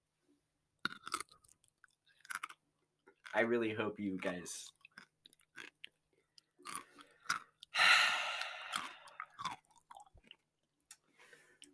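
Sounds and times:
person chewing on a pickle: 0.8 - 3.3, 4.7 - 11.0
speech: 3.4 - 4.8
breathy sigh-like burst: 7.7 - 9.3.

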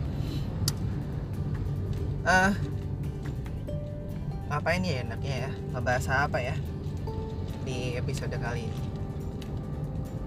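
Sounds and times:
steady low rumble inside a car interior: 0.0 - 10.2
speech: 2.2 - 2.7, 4.5 - 6.7, 7.7 - 8.9.

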